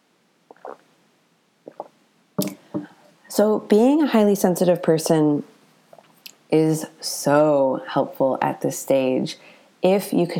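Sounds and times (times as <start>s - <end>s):
person gulping water: 0.5s - 0.8s, 1.7s - 2.9s
glass being set down: 2.4s - 2.9s
speech: 3.4s - 5.5s, 6.5s - 10.3s.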